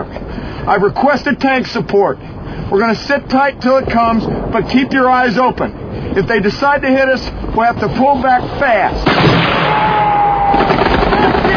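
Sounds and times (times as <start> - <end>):
speech: 0.7 - 11.4
heavy gunfire barrage in a combat scene near buildings: 9.0 - 11.5.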